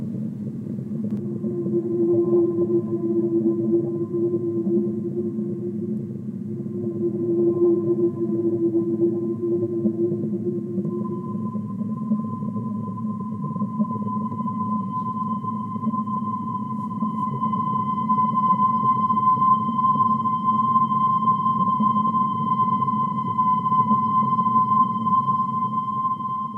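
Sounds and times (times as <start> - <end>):
constant deep underwater rumble: 0.0 - 18.3
whale song heard underwater: 0.0 - 26.5.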